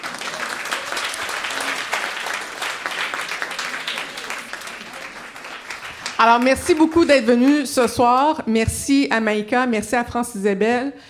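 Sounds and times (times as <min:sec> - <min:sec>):
room full of people applauding: 0:00.0 - 0:07.6
speech: 0:06.2 - 0:11.0.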